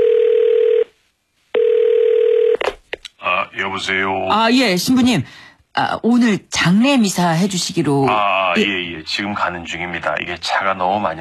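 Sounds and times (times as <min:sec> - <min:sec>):
telephone dial tone: 0:00.0 - 0:00.9, 0:01.6 - 0:02.6
speech: 0:03.6 - 0:11.1.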